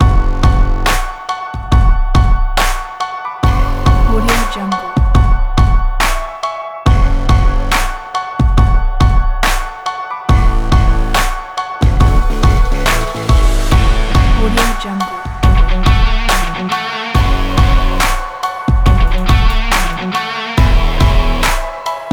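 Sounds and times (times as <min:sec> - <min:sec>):
energetic powerful modern electronic rock music: 0:00.0 - 0:22.1.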